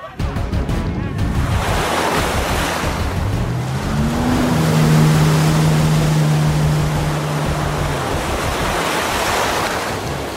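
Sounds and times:
ocean waves breaking on a beach: 0:00.1 - 0:10.3
low droning hum: 0:01.3 - 0:09.2.

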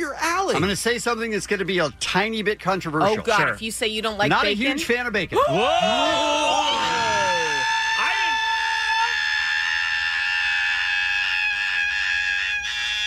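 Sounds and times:
speech: 0:00.5 - 0:06.7
person screaming loudly like a monster: 0:05.4 - 0:13.0.

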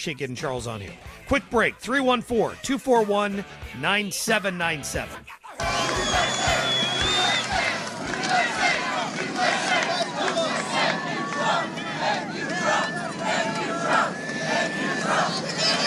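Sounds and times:
speech: 0:00.0 - 0:06.3
large crowd cheering and shouting at an air base departure: 0:05.4 - 0:15.8.

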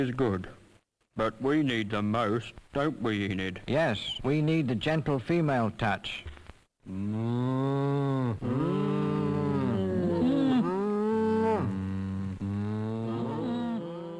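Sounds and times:
speech: 0:00.0 - 0:00.6, 0:01.2 - 0:09.2
several cows mooing in overlapping bellows: 0:07.0 - 0:14.1.

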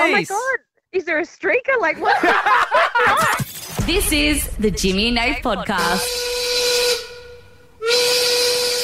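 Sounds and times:
speech: 0:00.1 - 0:06.3
laughter: 0:02.0 - 0:03.4
steam whistle blowing signaling quitting time: 0:05.8 - 0:08.8.

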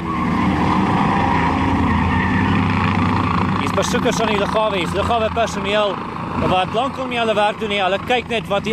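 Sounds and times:
drifting car engines revving: 0:00.0 - 0:08.7
low-hovering helicopter roaring: 0:00.0 - 0:08.7
speech: 0:03.8 - 0:08.7.

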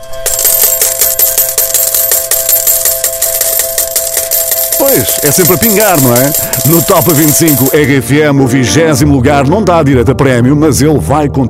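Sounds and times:
cascade of coins pouring and clinking: 0:00.0 - 0:07.9
speech: 0:04.8 - 0:11.4.

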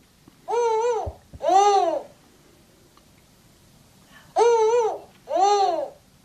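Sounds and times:
spotted eagle-owl hooting: 0:00.5 - 0:02.2, 0:04.4 - 0:06.0.

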